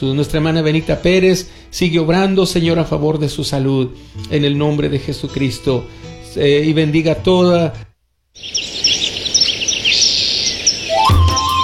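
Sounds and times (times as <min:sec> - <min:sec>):
speech: 0:00.0 - 0:08.7
small birds chirping and trilling: 0:08.4 - 0:11.6.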